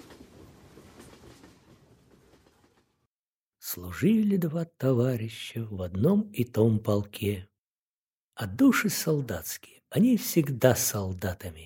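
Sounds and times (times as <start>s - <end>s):
train wheels clattering on rails heard from inside a moving carriage: 0.0s - 3.1s
speech: 3.7s - 7.5s, 8.4s - 11.6s.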